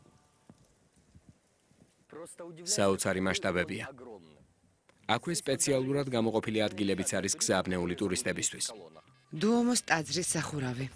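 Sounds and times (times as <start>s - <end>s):
rain on a cathedral rooftop: 0.0s - 2.1s
speech: 2.2s - 4.5s, 5.1s - 10.9s.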